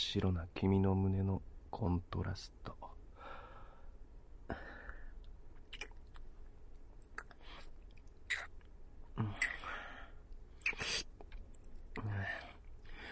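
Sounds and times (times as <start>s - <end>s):
speech: 0.1s - 3.0s, 4.5s - 4.7s
chewing and eating jam with wet mouth sounds: 5.6s - 8.8s, 10.3s - 12.0s.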